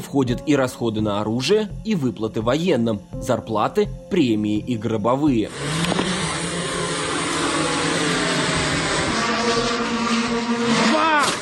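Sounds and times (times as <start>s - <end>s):
speech: 0.1s - 5.9s
small drone motor buzzing and revving for launch: 5.4s - 11.4s.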